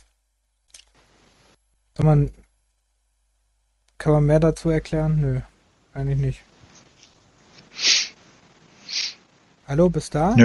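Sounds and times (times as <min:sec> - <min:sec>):
speech: 0:02.0 - 0:02.4, 0:04.0 - 0:06.5, 0:09.7 - 0:10.4
sniffling: 0:07.6 - 0:08.2.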